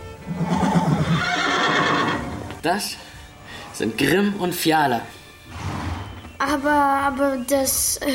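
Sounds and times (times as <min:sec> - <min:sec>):
horse whinnying in a stable: 0:00.3 - 0:02.5, 0:05.4 - 0:06.3
speech: 0:02.6 - 0:03.1, 0:03.8 - 0:05.6, 0:06.4 - 0:08.1.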